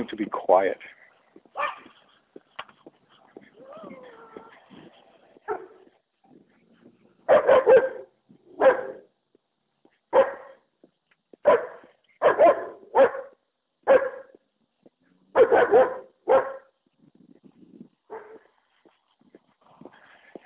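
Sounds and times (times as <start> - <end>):
speech: 0.0 - 1.0
dogs barking at a passing walker: 1.5 - 2.1, 5.4 - 5.9, 7.2 - 9.1, 10.1 - 10.6, 11.4 - 14.4, 15.3 - 16.7, 18.1 - 18.5
dogs whining and yipping: 3.4 - 5.8.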